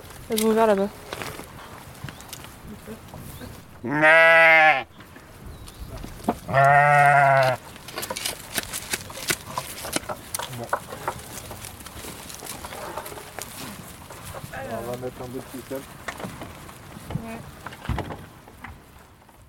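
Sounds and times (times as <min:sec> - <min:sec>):
faint rustling: 0:00.0 - 0:19.4
scattered farmyard noise: 0:00.0 - 0:19.4
speech: 0:00.3 - 0:01.1, 0:02.9 - 0:04.9, 0:06.5 - 0:07.6, 0:14.9 - 0:16.0, 0:17.3 - 0:17.6
dairy ewes bleating in a flock: 0:03.8 - 0:04.9, 0:06.5 - 0:07.6.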